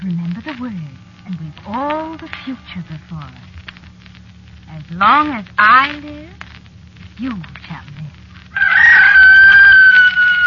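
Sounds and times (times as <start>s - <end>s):
faint low rumble: 0.0s - 10.4s
speech: 0.5s - 3.5s, 4.7s - 6.4s, 7.2s - 8.2s
rooster crowing: 8.5s - 10.4s.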